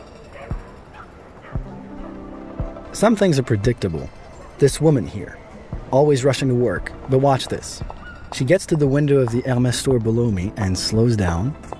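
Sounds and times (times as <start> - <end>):
dogs yipping and whimpering: 0.0 - 2.2, 7.9 - 8.3
steady outdoor street hum: 0.0 - 11.7
dogs barking: 0.1 - 2.8, 7.9 - 8.4
speech: 2.9 - 11.7.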